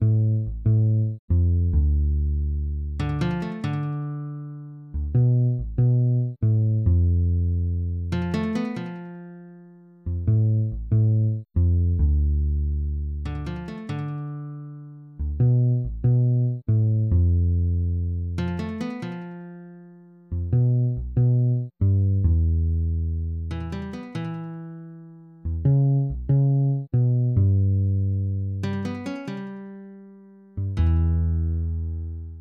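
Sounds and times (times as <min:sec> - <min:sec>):
bass guitar: 0:00.0 - 0:32.3
guitar: 0:03.0 - 0:06.2, 0:08.1 - 0:10.5, 0:13.2 - 0:16.5, 0:18.4 - 0:21.6, 0:23.5 - 0:27.8, 0:28.4 - 0:32.3.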